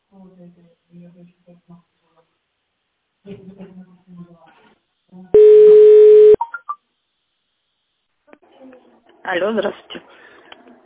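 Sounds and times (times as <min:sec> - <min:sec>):
telephone line tones while a call connects to an operator: 0:05.4 - 0:06.4
speech: 0:09.3 - 0:10.0.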